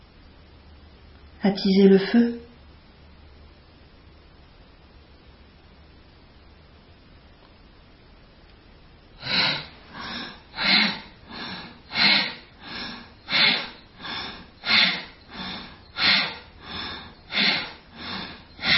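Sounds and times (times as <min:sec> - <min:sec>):
speech: 0:01.4 - 0:02.4
deep slow breathing in and out during a pranayama-style breathing exercise: 0:09.2 - 0:18.7.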